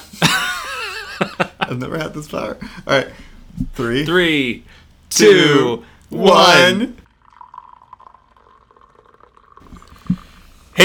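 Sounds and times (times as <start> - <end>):
laughter: 0.0 - 2.0
speech: 1.7 - 7.0
person gulping a drink of water: 7.3 - 10.5.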